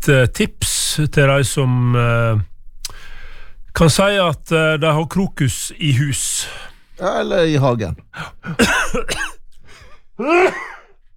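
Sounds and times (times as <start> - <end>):
speech: 0.0 - 2.5, 3.8 - 9.4, 10.2 - 10.7
harsh coughing: 8.2 - 11.0
throat clearing: 10.2 - 11.0.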